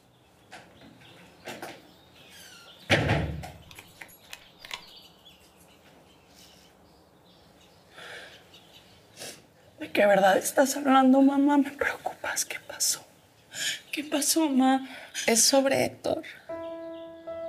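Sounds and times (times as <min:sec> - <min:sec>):
door shutting: 0:02.4 - 0:03.9
speech: 0:10.0 - 0:13.0, 0:14.0 - 0:16.4.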